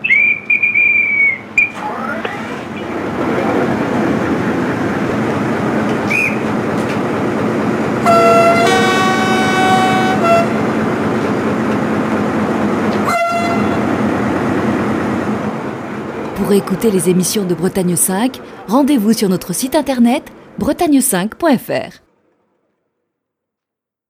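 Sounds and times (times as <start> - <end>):
station master's whistle blowing: 0.0 - 1.8, 6.0 - 6.5, 8.0 - 10.6, 12.9 - 14.0
train departing from a station rumbling: 0.0 - 22.8
multi-tone train horn blast: 8.0 - 15.5
speech: 16.5 - 22.0.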